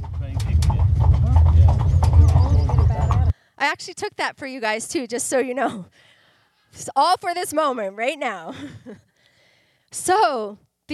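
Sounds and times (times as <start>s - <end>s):
buggy wheels rumbling: 0.0s - 3.3s
horse hooves clip-clopping on pavement pulling a buggy in the Aran Islands: 0.0s - 3.3s
speech: 3.6s - 6.1s, 6.7s - 9.1s, 9.9s - 10.9s.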